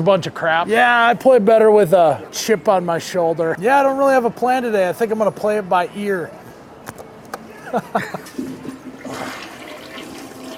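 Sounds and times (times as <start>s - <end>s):
speech: 0.0s - 6.4s, 7.7s - 9.3s
laughter: 7.5s - 8.6s
toilet flushing with swirling water: 8.3s - 10.5s.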